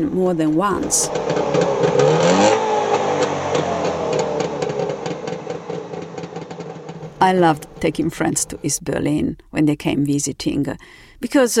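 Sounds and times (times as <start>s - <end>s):
speech: 0.0s - 2.6s, 7.2s - 11.5s
Trabant tiny car engine running and revving: 0.4s - 8.4s.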